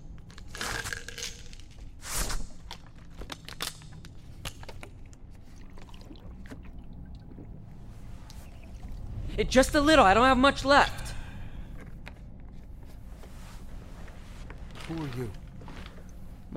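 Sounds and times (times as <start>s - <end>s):
low rumble: 0.0s - 16.5s
water sloshing and splashing in a container: 5.0s - 9.2s
speech: 9.4s - 11.0s, 15.2s - 15.4s.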